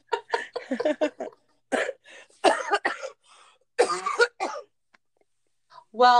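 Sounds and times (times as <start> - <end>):
person laughing: 0.0 - 1.4
speech: 0.7 - 1.4, 6.0 - 6.1
person coughing harshly: 1.7 - 3.2, 3.8 - 4.7
short breaths: 3.2 - 3.7.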